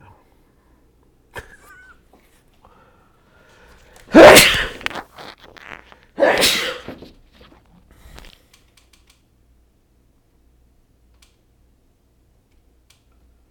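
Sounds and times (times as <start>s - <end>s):
person sneezing: 4.0s - 7.1s.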